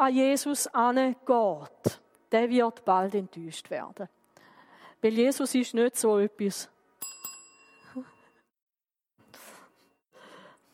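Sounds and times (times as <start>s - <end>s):
speech: 0.0s - 4.2s, 5.0s - 6.7s
small bell struck once: 7.0s - 8.5s.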